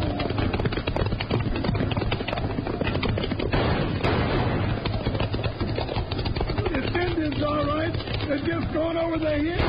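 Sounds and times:
pounding hoofbeats during a horseback chase: 0.0 - 9.6
gunfire during a horseback chase: 3.4 - 7.1, 9.4 - 9.6
speech: 8.6 - 9.6.

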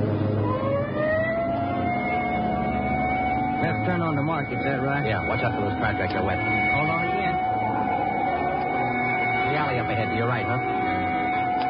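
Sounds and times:
engine and road noise: 0.0 - 11.6
police car siren wailing: 0.0 - 11.6
speech: 3.6 - 7.0, 9.6 - 10.8.

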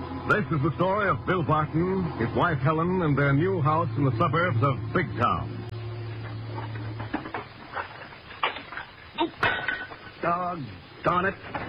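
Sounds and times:
steady low hum: 0.0 - 11.0
speech: 0.3 - 5.6, 10.2 - 11.6
dishes clinking and clattering: 6.5 - 10.2
dishes crashing: 6.6 - 10.2.

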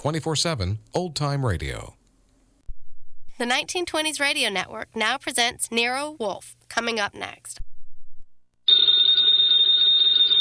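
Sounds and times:
speech: 0.0 - 2.0, 3.4 - 7.7
telephone bell ringing in an old-time radio drama: 8.7 - 10.3.

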